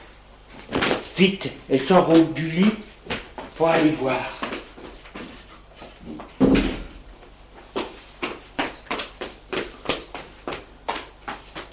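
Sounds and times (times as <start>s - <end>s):
speech: 1.2s - 2.9s, 3.6s - 4.4s
apartment door closing with a heavy thud: 6.4s - 7.0s.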